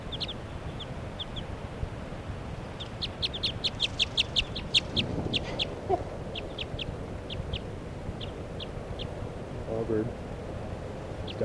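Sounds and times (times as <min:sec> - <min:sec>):
female wild bird alarm call of sharp high chirps: 0:00.0 - 0:01.5, 0:02.6 - 0:09.2
low rumbling background: 0:00.0 - 0:11.4.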